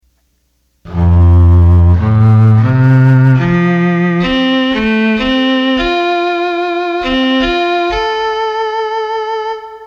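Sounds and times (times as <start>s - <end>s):
cello: 0.9s - 5.9s
Roland accordion: 0.9s - 9.8s.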